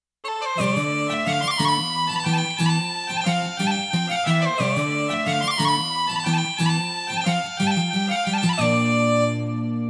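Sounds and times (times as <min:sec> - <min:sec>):
Irish bagpipe ringtone: 0:00.2 - 0:09.8.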